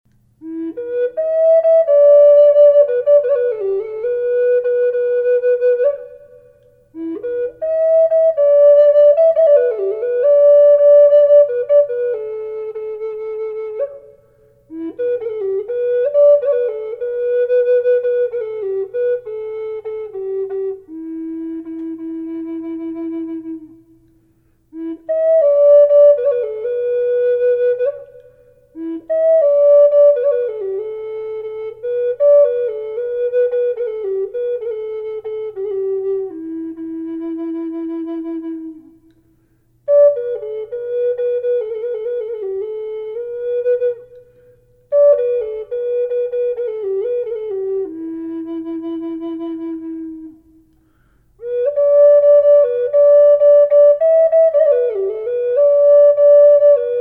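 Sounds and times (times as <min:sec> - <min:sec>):
flute with reverb in E minor: 0:00.4 - 0:57.0.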